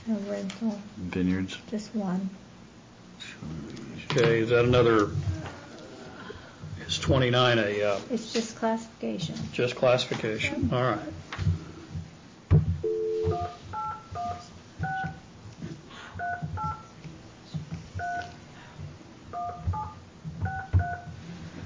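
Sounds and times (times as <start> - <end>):
speech: 0.1 - 2.5, 3.4 - 5.3, 7.0 - 11.5
telephone keypad dialing tones: 12.9 - 15.2, 19.3 - 21.1.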